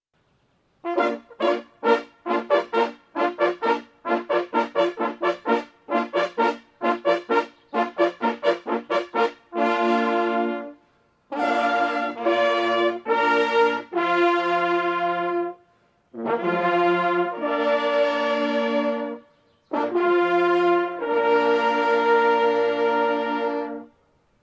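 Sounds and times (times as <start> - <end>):
hunting horn players playing a hunting call: 0.8 - 24.0.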